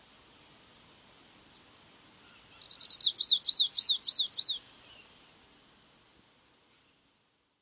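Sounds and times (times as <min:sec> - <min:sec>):
Stripe-tailed yellow finch Sicalis citrina citrina song: 0:01.4 - 0:05.4.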